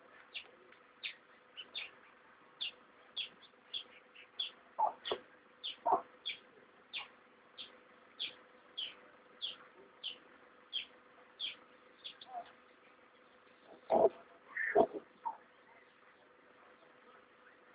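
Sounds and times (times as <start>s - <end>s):
chicks peeping: 2.6s - 12.6s, 13.7s - 15.4s.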